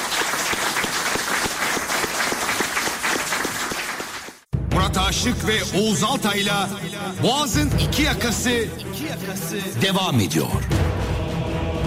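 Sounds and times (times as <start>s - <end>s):
audience applause: 0.0s - 4.5s
speech: 4.9s - 10.8s.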